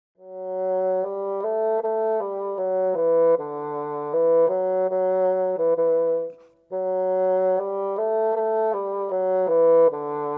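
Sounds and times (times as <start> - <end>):
bassoon: 0.2 - 10.3.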